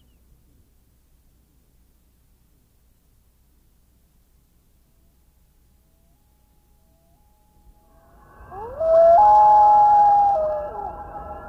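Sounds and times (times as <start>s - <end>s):
loon wailing call: 5.8s - 11.4s.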